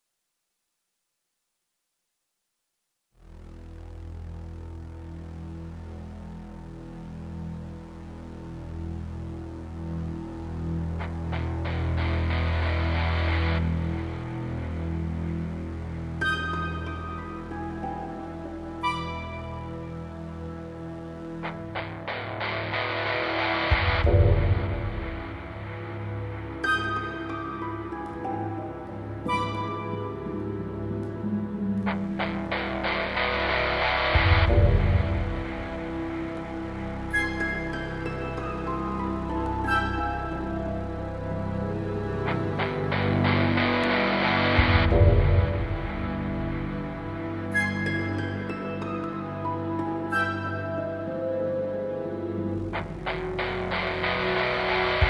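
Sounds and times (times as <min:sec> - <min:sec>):
dramatic orchestral guitar music: 0:04.4 - 0:55.0.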